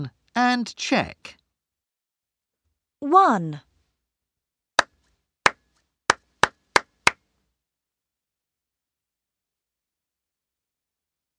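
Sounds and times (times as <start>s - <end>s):
speech: 0.0s - 1.4s, 3.0s - 3.7s
hand claps practising a written rhythm pattern: 6.1s - 7.2s.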